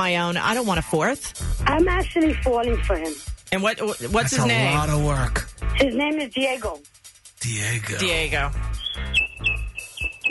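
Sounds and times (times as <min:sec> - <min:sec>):
speech: 0:00.0 - 0:08.7
pet bird chirping: 0:08.8 - 0:10.2.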